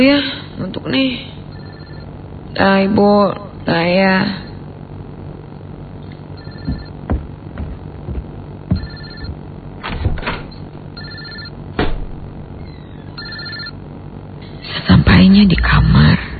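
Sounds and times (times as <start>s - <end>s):
speech: 0.0s - 1.4s, 2.6s - 4.5s
low hum: 0.0s - 16.3s
mobile phone ringing in a bedroom: 1.5s - 2.1s, 6.4s - 7.0s, 8.7s - 9.4s, 11.0s - 11.6s, 13.2s - 13.8s
thumps and movement noises: 6.0s - 10.9s.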